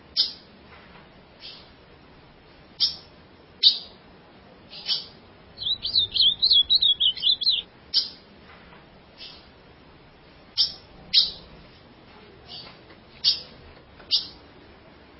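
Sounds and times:
ultramarine grosbeak song: 0.1s - 0.5s, 1.4s - 1.7s, 2.8s - 4.0s, 4.7s - 8.2s, 9.2s - 9.5s, 10.5s - 11.5s, 12.5s - 14.4s.

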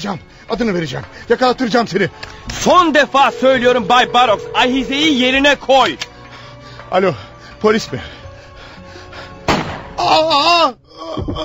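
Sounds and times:
speech: 0.0s - 6.1s, 6.9s - 8.2s, 10.1s - 11.4s
staged gunshot sound effect: 9.5s - 9.9s.

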